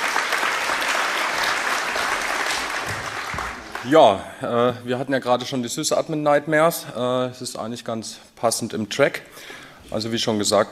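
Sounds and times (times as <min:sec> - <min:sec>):
audience applause welcoming a speaker to a talk: 0:00.0 - 0:04.2
speech: 0:03.8 - 0:10.7.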